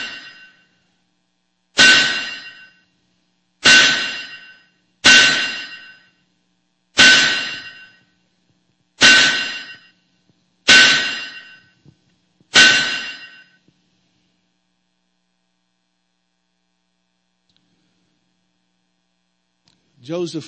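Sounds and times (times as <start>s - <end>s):
hammer striking metal spikes: 0.0s - 0.6s, 1.8s - 2.8s, 3.6s - 6.1s, 7.0s - 8.0s, 9.0s - 9.9s, 10.7s - 11.7s, 12.5s - 13.6s
speech: 20.0s - 20.4s.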